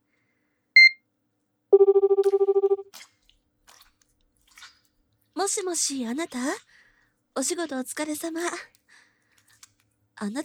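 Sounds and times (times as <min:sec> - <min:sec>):
short electronic beep: 0:00.8 - 0:01.0, 0:01.8 - 0:02.8
rapid pulsing telephone ring tone during outgoing call: 0:01.8 - 0:02.8
speech: 0:05.4 - 0:06.8, 0:07.4 - 0:08.8, 0:10.2 - 0:10.4.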